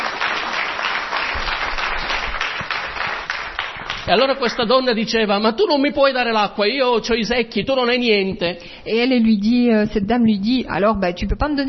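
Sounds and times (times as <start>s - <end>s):
crowd applauding: 0.0s - 4.9s
speech: 4.1s - 11.6s.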